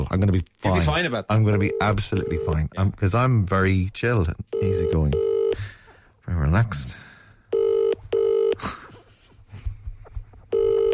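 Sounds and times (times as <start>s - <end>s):
speech: 0.0s - 7.0s
mobile phone call ringing unanswered: 1.5s - 2.6s, 4.5s - 5.6s, 7.5s - 8.6s, 10.5s - 10.9s.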